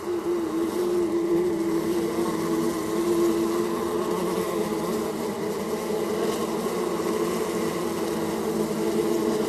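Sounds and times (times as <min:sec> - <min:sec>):
bees buzzing in a hive: 0:00.0 - 0:09.4.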